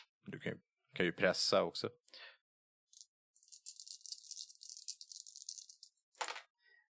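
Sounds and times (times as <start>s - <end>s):
speech: 0.3s - 2.3s
dice rattling in a cup: 3.0s - 6.4s.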